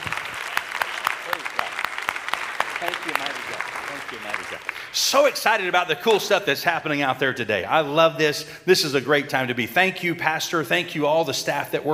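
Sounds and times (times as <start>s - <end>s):
church audience applause: 0.0s - 5.4s
speech: 2.8s - 11.9s.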